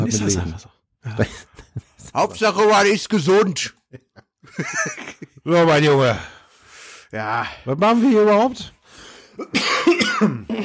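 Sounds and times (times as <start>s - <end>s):
speech: 0.1s - 6.4s, 7.1s - 8.8s, 9.4s - 10.6s
laughter: 1.0s - 2.4s, 3.8s - 5.8s
harsh raspy coughs: 9.4s - 10.6s.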